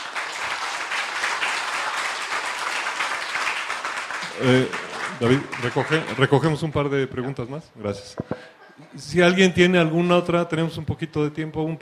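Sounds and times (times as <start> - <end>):
audience applause at a university question-and-answer session: 0.0 - 6.4
speech: 4.4 - 11.8.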